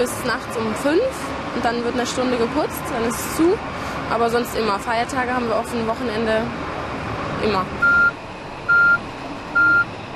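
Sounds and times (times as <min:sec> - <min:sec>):
speech: 0:00.0 - 0:06.7, 0:07.4 - 0:07.9
large truck rumbling engine: 0:00.0 - 0:10.1
large truck reversing alarm beeps: 0:07.8 - 0:10.0.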